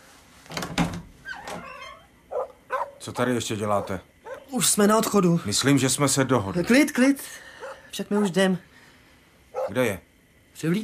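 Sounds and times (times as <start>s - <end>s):
door opening thuds and knocks: 0.5s - 1.8s
speech: 3.0s - 8.7s, 9.7s - 10.8s.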